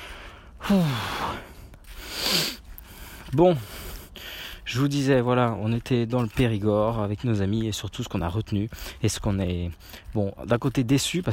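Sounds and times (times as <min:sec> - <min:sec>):
heavy gasping breaths of tired person walking uphill: 0:00.0 - 0:04.7
speech: 0:00.7 - 0:01.2, 0:03.3 - 0:03.8, 0:04.7 - 0:11.3.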